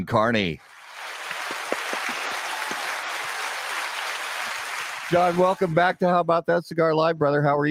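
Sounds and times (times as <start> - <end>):
speech: 0.0 - 0.7, 5.1 - 7.6
audience crowd clapping: 0.6 - 6.0.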